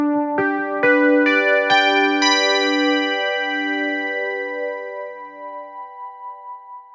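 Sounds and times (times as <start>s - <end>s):
synthesizer: 0.0s - 6.9s.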